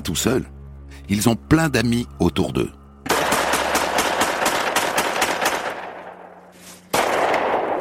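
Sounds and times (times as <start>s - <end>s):
speech: 0.0s - 2.8s
gunshots from shooting practice in a forest: 3.1s - 6.3s, 6.9s - 7.8s.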